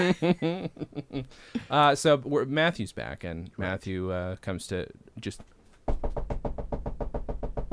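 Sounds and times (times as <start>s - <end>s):
speech: 0.0s - 6.3s
small polite light knocking on a door: 5.9s - 7.7s.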